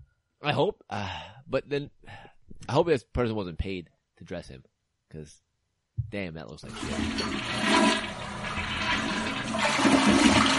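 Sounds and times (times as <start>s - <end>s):
speech: 0.4s - 8.1s, 9.5s - 10.5s
loud toilet flushing: 6.7s - 10.5s.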